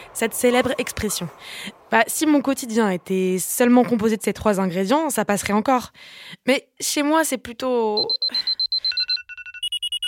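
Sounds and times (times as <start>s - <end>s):
speech: 0.2s - 8.6s
electronic alarm clock beeping: 8.0s - 10.0s.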